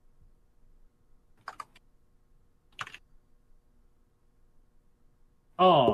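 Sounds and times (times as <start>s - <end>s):
typing on a computer keyboard: 1.4s - 1.8s, 2.7s - 3.1s.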